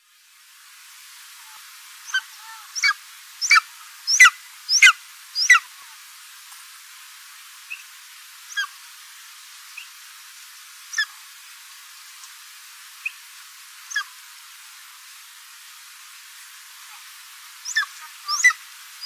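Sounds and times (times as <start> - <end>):
golden eagle calling: 2.1 - 5.6, 17.6 - 19.0.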